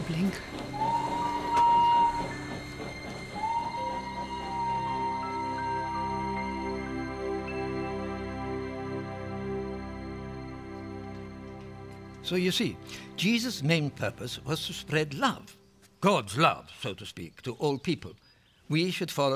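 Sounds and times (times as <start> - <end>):
train whistle: 0.0 - 15.4
rail cars and machinery rumbling as train pulls away: 0.0 - 15.6
speech: 0.1 - 0.6, 12.3 - 19.3.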